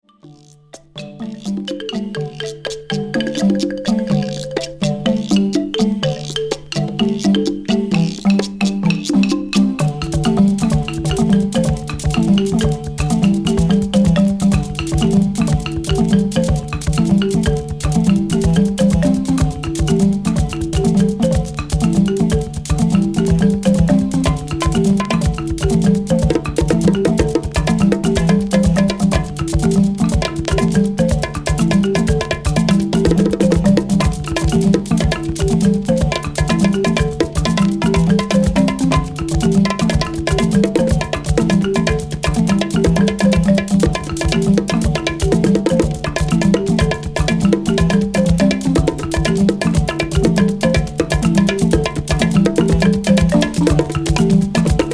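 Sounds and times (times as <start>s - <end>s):
angklung percussion: 0.0s - 54.9s.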